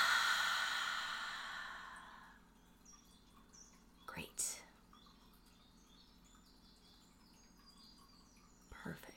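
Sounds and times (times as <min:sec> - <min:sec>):
long deep breath released during a guided relaxation exercise: 0:00.0 - 0:02.4.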